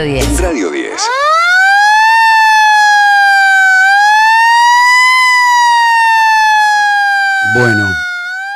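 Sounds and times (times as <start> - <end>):
speech: 0.0 - 1.6, 7.6 - 8.1
siren wailing: 1.0 - 8.5.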